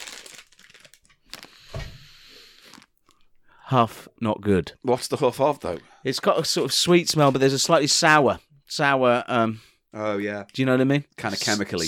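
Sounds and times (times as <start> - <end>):
plastic packet of jelly beans crinkling and rustling: 0.0 - 1.6, 2.6 - 3.2
plastic packet of jelly beans tearing: 0.0 - 1.6
speech: 3.7 - 11.8.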